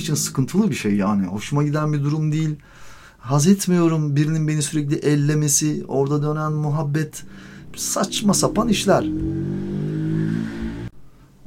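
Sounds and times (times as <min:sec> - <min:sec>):
speech: 0:00.0 - 0:09.6
motorbike passing close by with loud revving engine: 0:06.6 - 0:10.9.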